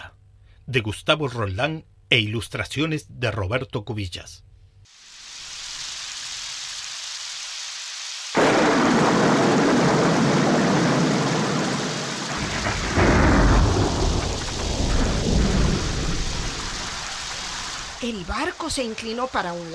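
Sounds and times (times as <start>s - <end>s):
speech: 0.7s - 5.0s, 18.1s - 19.7s
heavy rain: 4.9s - 19.7s
deep rolling thunder: 8.4s - 18.0s.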